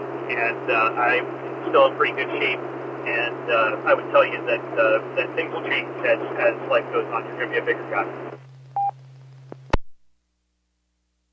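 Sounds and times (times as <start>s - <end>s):
steady low hum: 0.0s - 10.1s
speech: 0.3s - 8.4s
short electronic telephone beep: 8.8s - 9.0s.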